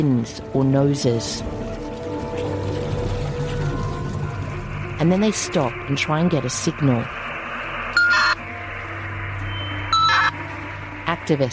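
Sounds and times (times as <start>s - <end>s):
speech: 0.0s - 1.6s, 5.0s - 7.2s, 11.2s - 11.5s
speedboat engine droning across a bay: 0.0s - 11.5s
water rushing and hissing against the speedboat hull: 0.0s - 11.5s.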